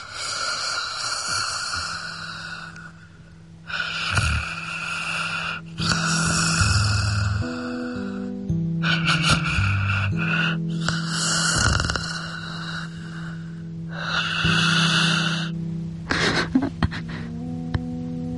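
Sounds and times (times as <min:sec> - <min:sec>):
light snoring of a sleeping person: 0:00.0 - 0:17.3
sleeping person's heavy breathing: 0:00.0 - 0:17.4
soft sustained low tones: 0:05.6 - 0:18.3.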